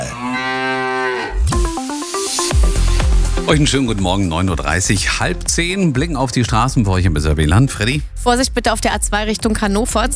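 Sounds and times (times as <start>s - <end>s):
cow moo from a mooing milk drink bottle: 0.0s - 1.5s
bright electronic-sounding tonal notes: 0.8s - 5.4s
thumping beats: 1.5s - 10.1s
speech: 3.5s - 10.1s.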